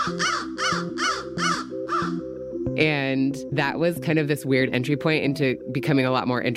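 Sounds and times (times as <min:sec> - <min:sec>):
crows cawing: 0:00.0 - 0:02.3
speech: 0:00.1 - 0:00.4, 0:02.8 - 0:06.5.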